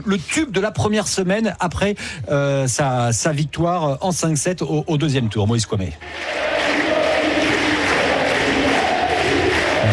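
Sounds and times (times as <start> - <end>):
speech: 0.0 - 6.6
large stadium crowd chanting a tennis player's name: 6.0 - 9.9.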